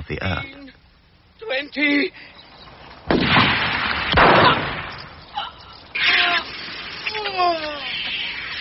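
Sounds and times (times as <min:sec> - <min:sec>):
speech: 0:00.1 - 0:00.6, 0:01.4 - 0:02.4, 0:07.4 - 0:08.0
pistol shots in a duel: 0:03.1 - 0:05.2.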